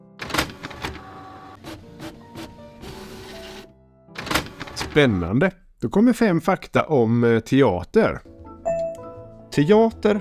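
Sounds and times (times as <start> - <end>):
printer printing out pages: 0.2 - 3.6, 4.2 - 5.0
speech: 5.0 - 8.3, 9.6 - 10.2.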